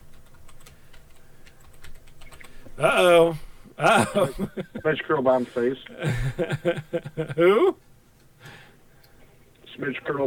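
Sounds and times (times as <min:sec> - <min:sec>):
typing a search on a computer keyboard: 0:00.0 - 0:02.6
laughter: 0:02.8 - 0:07.8
speech: 0:02.8 - 0:07.9, 0:09.8 - 0:10.2.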